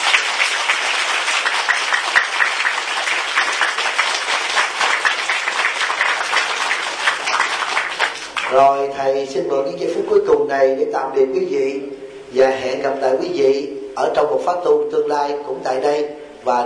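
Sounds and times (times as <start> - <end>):
large crowd applauding at a Buddhist Dharma talk: 0.0 - 8.6
speech: 8.5 - 16.6.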